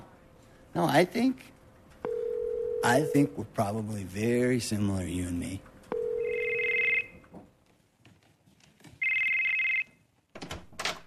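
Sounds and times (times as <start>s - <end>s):
speech: 0.8s - 1.6s, 2.8s - 5.7s
electronic telephone ringing: 2.1s - 3.3s, 5.9s - 7.2s, 9.0s - 9.9s.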